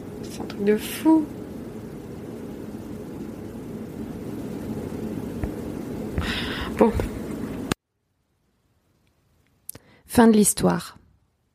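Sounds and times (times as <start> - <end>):
cargo ship engine drone at sea on the Sea of Japan: 0.0 - 7.8
hissing burst: 0.0 - 7.8
speech: 0.6 - 1.4, 6.8 - 7.1, 10.2 - 11.0.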